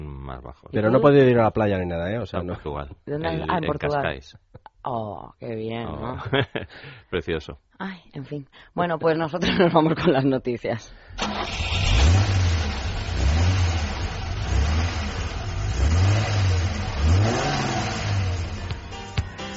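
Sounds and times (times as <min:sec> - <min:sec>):
speech: 0:00.3 - 0:12.4
laughter: 0:06.2 - 0:06.8
cold car engine revving hard: 0:11.2 - 0:19.2.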